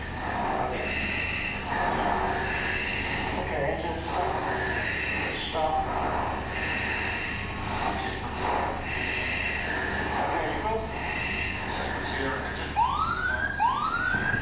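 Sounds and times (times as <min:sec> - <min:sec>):
aircraft cockpit automated warning voice: 0:00.0 - 0:14.4
aircraft engine roar: 0:00.0 - 0:14.4
aircraft cockpit electronic alarm tones: 0:12.7 - 0:14.4.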